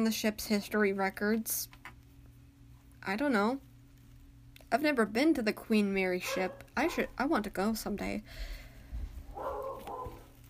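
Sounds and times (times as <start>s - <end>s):
speech: 0.0s - 1.8s, 3.0s - 3.7s, 4.7s - 8.6s
low steady hum: 0.0s - 10.4s
dog barking: 6.2s - 7.1s, 9.3s - 10.3s.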